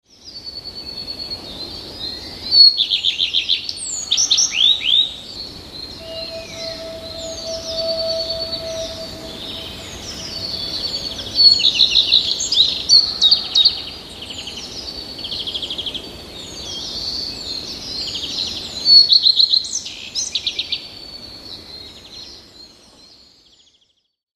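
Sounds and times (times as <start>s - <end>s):
common redstart singing: 0.2s - 20.8s
common chiffchaff singing: 6.0s - 13.5s.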